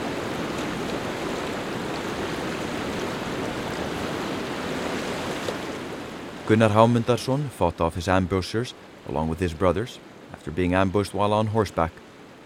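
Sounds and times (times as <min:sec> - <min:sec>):
Eystri Rangá river in Iceland rushing: 0:00.0 - 0:12.4
speech: 0:06.5 - 0:12.4.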